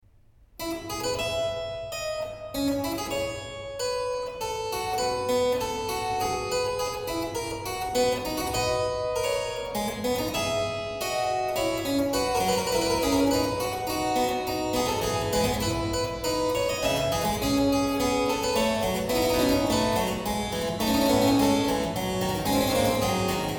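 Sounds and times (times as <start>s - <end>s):
harpsichord playing a fugue: 0.8s - 23.5s
organ playing a fugue: 14.2s - 23.5s.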